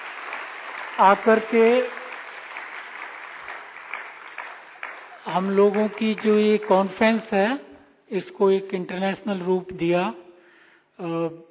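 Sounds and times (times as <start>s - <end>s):
conference audience applause: 0.0s - 7.3s
speech: 1.0s - 2.0s, 5.3s - 10.2s, 11.0s - 11.4s.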